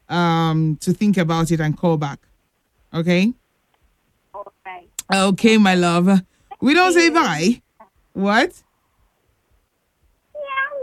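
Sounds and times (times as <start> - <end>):
speech: 0.1 - 2.3, 2.9 - 3.4, 4.4 - 7.6, 8.2 - 8.6
person imitating a cat meow: 10.4 - 10.8.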